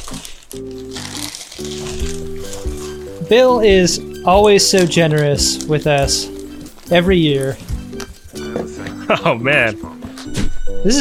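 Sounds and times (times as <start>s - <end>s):
gift wrapping paper crinkling and tearing as presents are unwrapped: 0.0s - 8.5s
speech: 0.5s - 0.9s, 3.3s - 6.3s, 6.9s - 7.6s, 9.1s - 9.9s, 10.8s - 11.0s.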